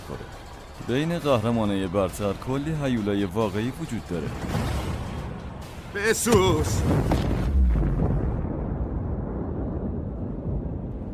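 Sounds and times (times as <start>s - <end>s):
speech: 0.1s - 4.8s, 6.0s - 7.2s
loud explosion: 6.3s - 11.1s.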